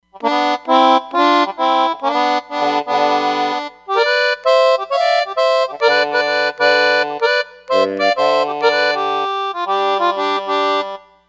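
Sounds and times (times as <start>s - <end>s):
vintage accordion on Roland Fantom XR synthesizer: 0.0s - 11.2s.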